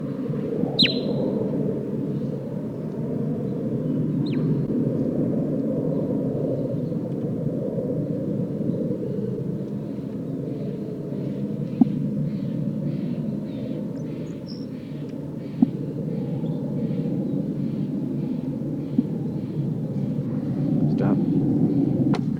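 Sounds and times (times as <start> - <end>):
constant low rumbling noise: 0.0 - 22.3
bird giving soft toots: 0.7 - 1.2.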